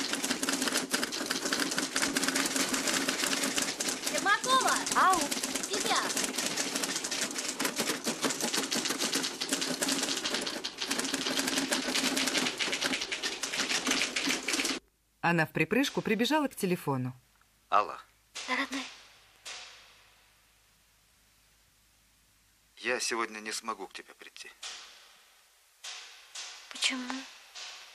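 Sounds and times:
typewriter typing: 0.0s - 14.8s
speech: 15.3s - 18.0s, 23.1s - 24.7s, 26.9s - 27.2s.

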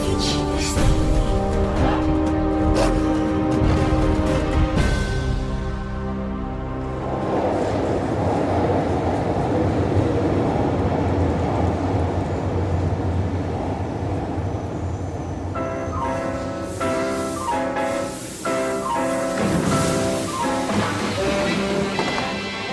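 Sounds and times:
melodic music: 0.0s - 7.5s, 15.6s - 22.7s
New York subway train on the A line rumbling: 0.0s - 22.7s.

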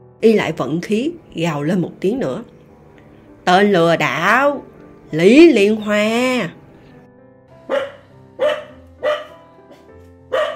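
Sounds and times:
speech: 0.2s - 2.5s, 3.4s - 6.6s
yellow-furred mountain dog barking in a bamboo forest: 7.7s - 9.4s, 10.3s - 10.5s.

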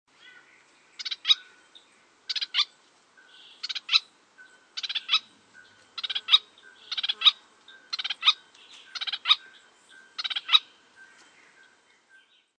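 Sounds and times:
Rufous-capped Spinetail Synallaxis ruficapilla calling: 2.3s - 2.7s, 3.6s - 4.1s, 4.8s - 5.3s, 6.0s - 9.4s, 10.2s - 10.7s.

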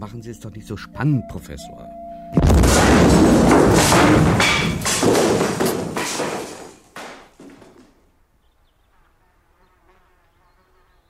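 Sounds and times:
speech: 0.0s - 2.8s
bomb explosion: 2.4s - 6.0s.

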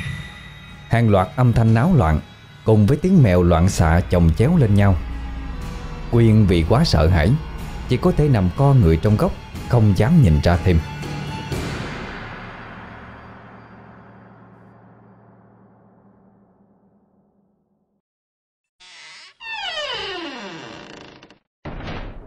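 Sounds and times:
speech: 0.9s - 5.1s, 6.1s - 11.0s
creaking door hinge: 18.8s - 21.5s.

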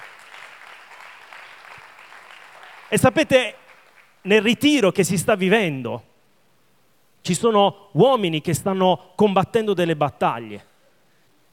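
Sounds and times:
audience applause at a Sunday gathering: 0.0s - 4.2s
speech: 2.9s - 3.6s, 4.2s - 6.1s, 7.2s - 10.7s.

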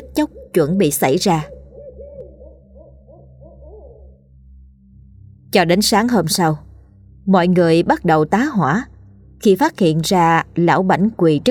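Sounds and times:
barn owl calling from a village banyan tree: 0.0s - 4.3s
low hum: 0.0s - 10.5s
speech: 0.2s - 1.6s, 5.6s - 11.4s.

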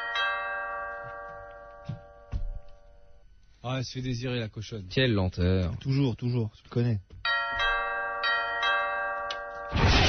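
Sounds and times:
old doorbell ringing with bright sustained chiming tones: 0.0s - 3.4s, 7.2s - 9.7s
speech: 3.6s - 7.2s
burst of broadband noise: 9.8s - 10.0s.

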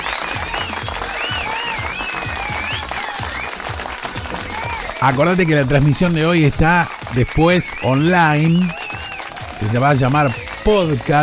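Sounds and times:
studio audience applause on a morning radio show: 0.0s - 11.2s
speech: 5.0s - 8.8s, 9.6s - 11.2s.

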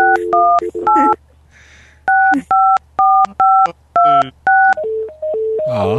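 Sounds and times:
hotel telephone dial tones after a dropped call: 0.0s - 1.2s, 2.1s - 5.7s
low steady hum: 0.0s - 5.9s
speech: 2.3s - 2.6s.

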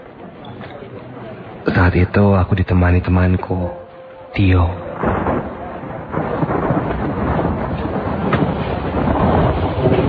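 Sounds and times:
heavy rain pouring in Bandung in the evening: 1.5s - 10.0s
speech: 1.7s - 6.2s
deep low rumbling: 3.6s - 10.0s.

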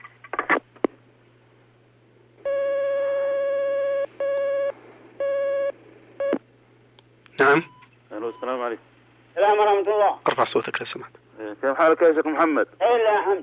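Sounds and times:
low constant hum: 0.0s - 13.4s
telephone line buzzing tone: 2.4s - 6.4s
speech: 7.4s - 7.7s, 9.6s - 13.4s.

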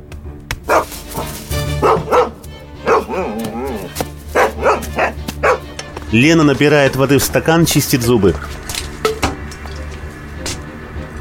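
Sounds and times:
dog barking while chasing: 0.7s - 5.7s
speech: 6.1s - 8.7s.

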